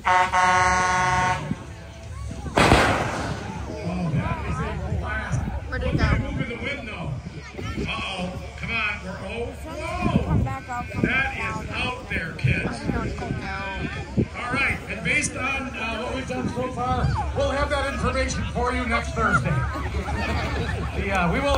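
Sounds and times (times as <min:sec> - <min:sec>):
speech: 0:00.0 - 0:00.6, 0:20.2 - 0:21.5
sustained horn-like tone: 0:00.0 - 0:01.6
noisy outdoor background: 0:00.0 - 0:21.5
voices talking and reacting: 0:00.0 - 0:21.5
large air cannon firing a loud broadband blast: 0:02.6 - 0:03.6
laughter: 0:16.4 - 0:21.5.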